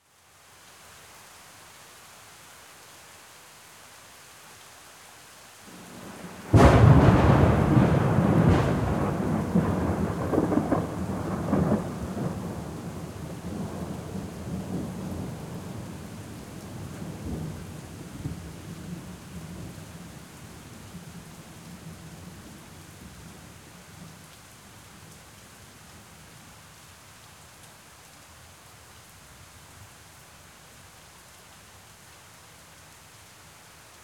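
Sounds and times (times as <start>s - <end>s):
thunder boom: 6.5s - 11.8s.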